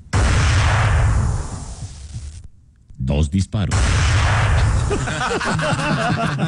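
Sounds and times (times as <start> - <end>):
rifle shots: 0.1 - 2.1, 3.7 - 5.1
laughter: 4.8 - 6.4.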